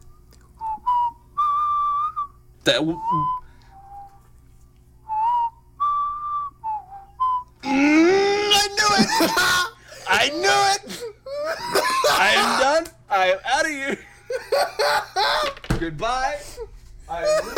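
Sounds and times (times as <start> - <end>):
person whistling a bouncy tune: 0.6 - 4.4, 5.0 - 7.6
speech: 2.6 - 3.4, 9.2 - 9.6, 14.6 - 16.4
loud wailing outburst: 7.6 - 12.8
laughter: 7.9 - 12.8, 13.8 - 15.7, 16.5 - 17.5.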